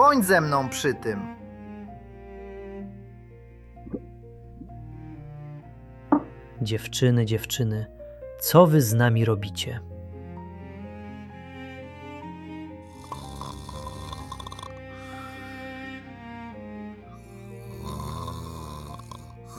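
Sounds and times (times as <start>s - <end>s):
speech: 0.0s - 1.4s, 6.6s - 9.9s
man snoring: 12.8s - 15.6s, 17.2s - 19.5s.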